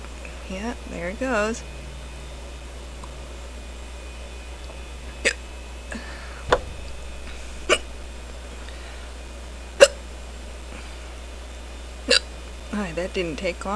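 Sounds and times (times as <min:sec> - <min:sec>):
hum: 0:00.0 - 0:13.7
speech: 0:00.5 - 0:01.8, 0:12.8 - 0:13.7
person hiccuping after sipping beer: 0:09.8 - 0:10.0, 0:12.1 - 0:12.3.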